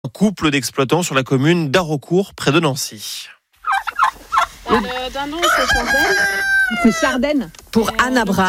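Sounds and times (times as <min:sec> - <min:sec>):
speech: 0:00.2 - 0:03.4, 0:04.7 - 0:08.4
chickens clucking: 0:03.6 - 0:07.4
chicken warbling crow-like call: 0:05.4 - 0:07.2.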